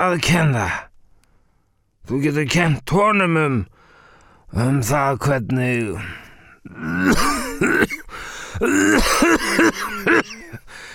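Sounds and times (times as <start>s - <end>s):
speech: 0.0s - 0.9s, 2.1s - 3.7s, 4.5s - 8.0s, 8.6s - 10.9s
throat-clearing bursts: 6.8s - 10.6s.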